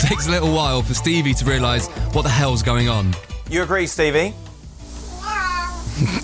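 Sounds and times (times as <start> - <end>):
speech: 0.1 - 4.5
cat meowing into a microphone: 5.1 - 5.9.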